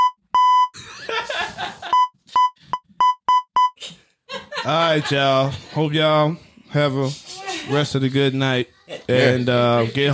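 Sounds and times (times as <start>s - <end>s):
loud censor bleeps: 0.0s - 0.8s, 1.9s - 3.8s
burst of laughter: 0.8s - 2.1s, 4.3s - 5.9s
speech: 4.7s - 10.1s.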